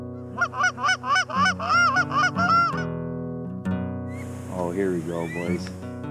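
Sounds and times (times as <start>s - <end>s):
flock of snow geese honking: 0.3s - 2.9s, 4.1s - 6.0s
speech: 4.8s - 5.9s.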